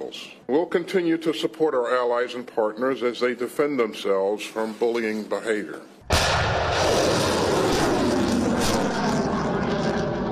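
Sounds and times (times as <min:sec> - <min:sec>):
speech: 0:00.1 - 0:06.0
anti-ship missiles fired by Japanese units during a military exercise: 0:06.0 - 0:10.3.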